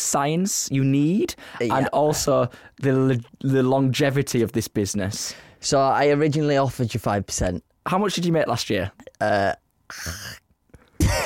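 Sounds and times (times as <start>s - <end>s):
speech: 0.1s - 10.4s
person coughing up phlegm: 10.0s - 11.2s.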